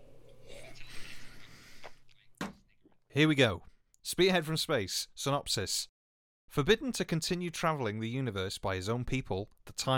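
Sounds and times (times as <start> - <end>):
person sipping an energy juice drink: 0.3 - 2.3
speech: 3.2 - 5.9, 6.5 - 9.9.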